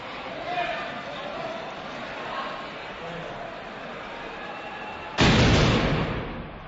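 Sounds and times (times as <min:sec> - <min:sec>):
outdoor murmur: 0:00.0 - 0:06.6
ragged ceremonial gun salvo: 0:05.2 - 0:06.6.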